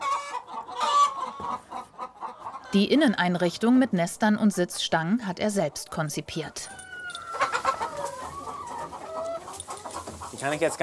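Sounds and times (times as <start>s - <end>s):
chickens clucking inside a mobile coop built from an old truck trailer: 0.0s - 10.8s
speech: 2.7s - 6.8s, 10.4s - 10.8s.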